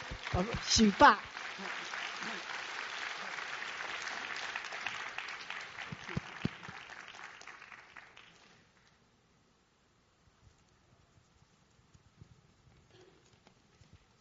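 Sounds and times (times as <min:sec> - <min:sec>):
sizable audience applauding a speaker: 0:00.0 - 0:08.6
speech: 0:00.3 - 0:02.4.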